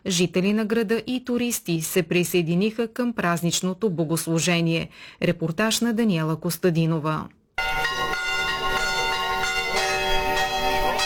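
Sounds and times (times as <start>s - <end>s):
speech: 0.0s - 7.4s
several church bells pealing together: 7.6s - 11.0s.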